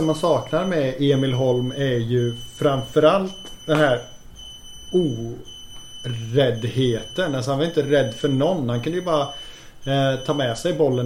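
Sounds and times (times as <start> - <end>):
speech: 0.0 - 4.1, 4.9 - 11.0
thin high-pitched electronic alarm tone: 0.0 - 11.0
person making a brief vocal sound: 5.0 - 5.5.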